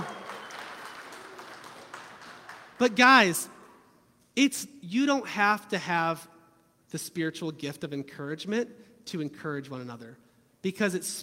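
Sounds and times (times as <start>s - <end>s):
crowd applauding in a large room: 0.0s - 3.0s
speech: 2.8s - 3.5s, 4.4s - 6.3s, 6.9s - 11.2s.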